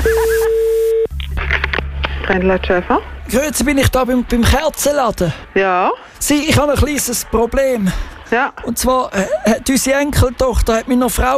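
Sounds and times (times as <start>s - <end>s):
telephone tone: 0.0s - 1.1s
clicks and noise bursts on telephone line: 1.1s - 2.4s
speech: 2.3s - 11.3s.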